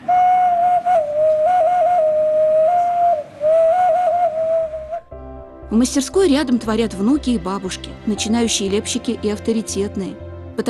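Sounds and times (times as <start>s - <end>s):
clay toy whistle being blown: 0.0s - 5.1s
speech: 5.8s - 10.6s.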